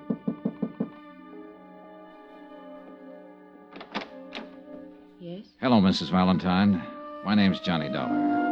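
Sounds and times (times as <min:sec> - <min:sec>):
knocking on a wooden hotel room door: 0:00.0 - 0:01.0
speech: 0:05.4 - 0:08.4.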